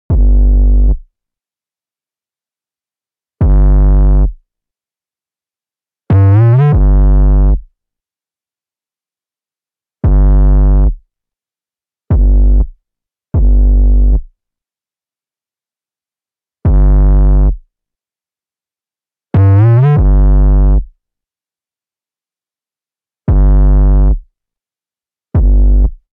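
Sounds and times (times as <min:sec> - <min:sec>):
808 bass with saturation: 0:00.1 - 0:01.0, 0:03.4 - 0:04.4, 0:06.1 - 0:07.6, 0:10.1 - 0:11.0, 0:12.1 - 0:12.7, 0:13.4 - 0:14.2, 0:16.7 - 0:17.6, 0:19.4 - 0:20.9, 0:23.3 - 0:24.2, 0:25.4 - 0:25.9.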